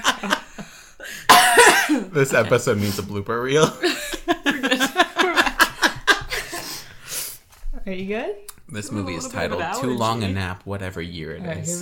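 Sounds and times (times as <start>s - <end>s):
laughter: 0.0s - 6.8s
speech: 0.2s - 0.4s, 2.1s - 4.0s, 7.9s - 11.8s
person coughing: 1.1s - 2.2s.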